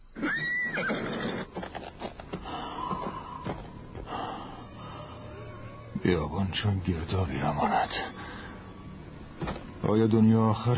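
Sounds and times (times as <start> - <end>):
horse neighing as its rider mounts: 0.2 - 3.6
speech: 6.1 - 8.2, 9.9 - 10.7.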